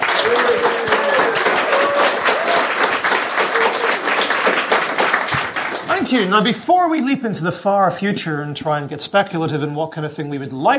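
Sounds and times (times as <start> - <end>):
crowd cheering: 0.0 - 6.4
live audience applauding: 0.0 - 6.5
speech: 0.3 - 0.8, 6.1 - 10.7.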